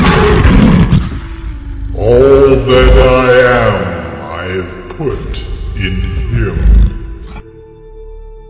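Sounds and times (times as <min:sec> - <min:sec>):
lion roaring: 0:00.0 - 0:04.2, 0:06.2 - 0:07.4.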